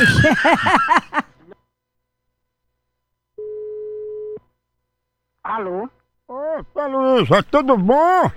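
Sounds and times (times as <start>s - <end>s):
speech: 0.0s - 1.2s, 5.5s - 8.3s
laughter: 0.0s - 1.6s
telephone ringing tone while placing a call: 3.4s - 4.4s.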